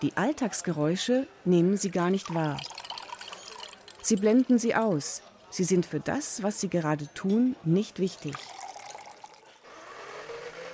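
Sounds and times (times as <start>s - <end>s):
speech: 0.0s - 2.8s, 4.0s - 8.6s
liquid pouring into a cup: 2.1s - 4.6s, 8.1s - 9.6s.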